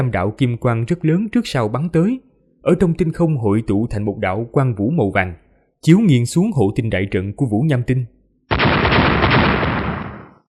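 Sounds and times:
speech: 0.0s - 8.2s
loud explosions booming across the sky: 8.5s - 10.4s.

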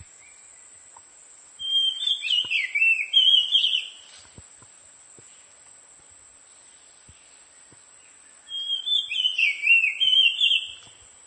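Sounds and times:
oriental magpie-robin Copsychus saularis musicus whistling: 1.6s - 4.0s, 8.5s - 10.9s.

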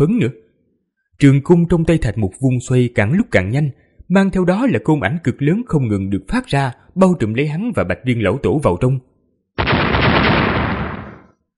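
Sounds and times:
speech: 0.0s - 0.4s, 1.2s - 9.1s
series of huge explosions: 9.6s - 11.4s.

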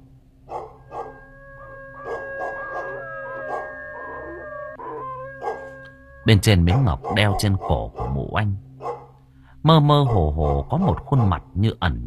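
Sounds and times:
neighbour's dog barking outside: 0.5s - 1.2s, 2.0s - 3.8s, 5.4s - 5.7s, 6.6s - 8.2s, 8.8s - 9.2s, 10.0s - 11.4s
speech: 6.3s - 8.7s, 9.6s - 12.0s.

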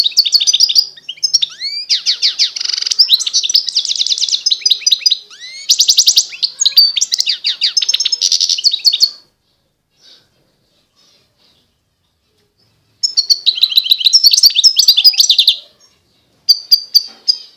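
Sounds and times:
wild European goldfinch song: 0.0s - 9.2s, 13.0s - 17.5s.

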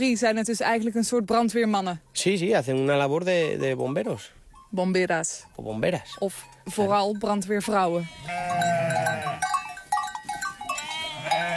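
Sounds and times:
speech: 0.0s - 8.8s
sheep bleating on a farm: 7.7s - 9.6s, 10.6s - 11.5s.

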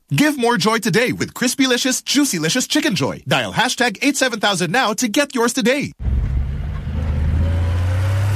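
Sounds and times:
speech: 0.1s - 6.1s
diesel truck driving through city streets: 6.0s - 8.2s.

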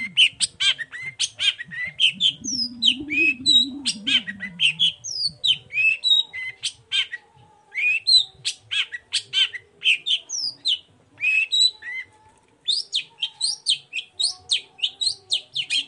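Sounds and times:
long-tailed shrike morning song medley of whistles and buzzy chatter: 0.0s - 15.8s.

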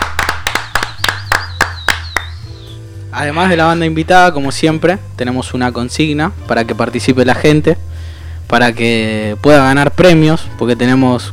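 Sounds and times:
audience applause at a live band show: 0.0s - 2.3s
speech: 3.2s - 11.3s.

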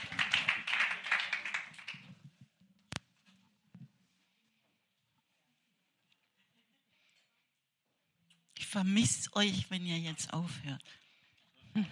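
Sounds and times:
applause at a church worship evening: 0.0s - 2.3s
speech: 8.7s - 11.0s.

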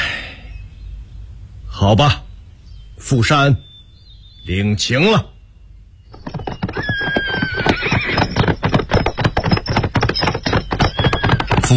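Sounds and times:
speech: 1.8s - 2.3s, 3.0s - 3.7s, 4.4s - 5.3s
horse hooves galloping away: 6.1s - 11.7s
horse neighing: 6.2s - 11.7s.

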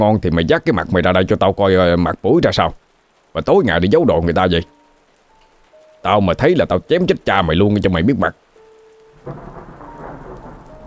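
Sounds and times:
speech: 0.0s - 4.8s, 6.0s - 8.4s, 9.2s - 9.5s
heavy rain pouring: 0.0s - 10.8s
low roll of thunder: 9.2s - 10.8s.

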